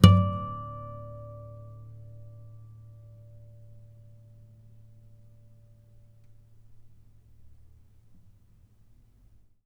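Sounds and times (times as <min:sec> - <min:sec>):
string harmonics: 0:00.0 - 0:03.8.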